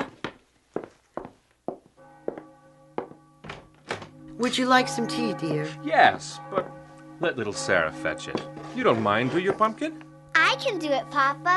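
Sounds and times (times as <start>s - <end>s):
footsteps on a hard floor: 0.0s - 4.2s, 8.3s - 9.8s
speech: 4.4s - 11.5s.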